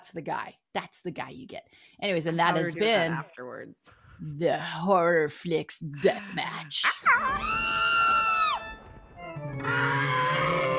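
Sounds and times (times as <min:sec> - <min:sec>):
speech: 0:00.0 - 0:08.3
loud sustained high-pitched scream sound effect: 0:07.0 - 0:08.7, 0:09.6 - 0:10.7.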